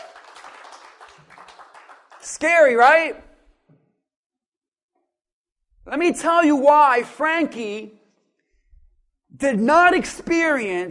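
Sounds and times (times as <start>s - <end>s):
crowd clapping: 0.0s - 2.4s
speech: 2.2s - 3.3s, 5.9s - 8.0s, 9.4s - 10.8s.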